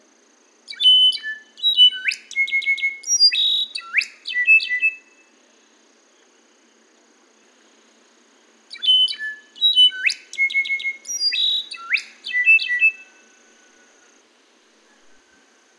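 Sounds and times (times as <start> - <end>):
slate-colored solitaire singing clear flute-like phrases: 0.7 - 5.4, 8.7 - 13.8.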